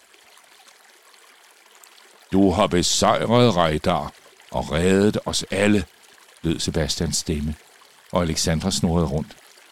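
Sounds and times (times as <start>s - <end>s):
water trickling down a path: 0.0s - 9.7s
speech: 2.3s - 9.4s.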